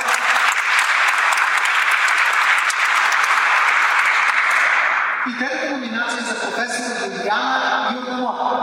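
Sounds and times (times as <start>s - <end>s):
audience applause: 0.0s - 5.3s
speech: 5.3s - 8.5s.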